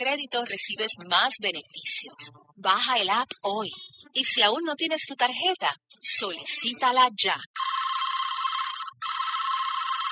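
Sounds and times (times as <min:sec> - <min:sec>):
speech: 0:00.0 - 0:07.8
unanswered telephone ringing in bright electronic bursts: 0:07.6 - 0:10.1.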